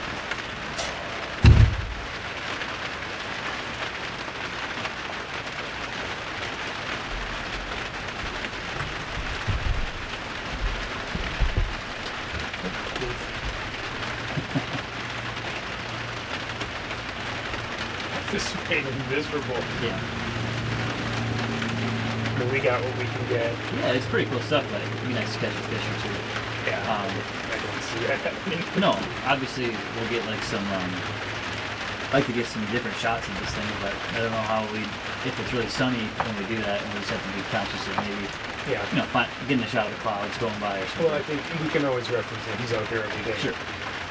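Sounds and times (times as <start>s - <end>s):
heavy rain drops pattering on surfaces: 0.0s - 44.1s
low thump: 1.4s - 2.1s, 9.1s - 11.8s
laughter: 14.0s - 15.2s
speech: 18.4s - 20.2s, 22.4s - 31.3s, 32.1s - 43.8s.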